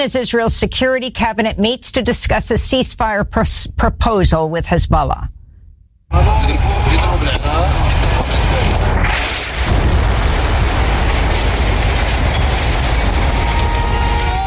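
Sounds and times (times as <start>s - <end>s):
speech: 0.0s - 5.4s, 6.1s - 6.6s
long heavy rumble: 6.1s - 14.4s
massive explosion in residential buildings: 6.1s - 14.4s
crackling debris: 6.2s - 14.4s.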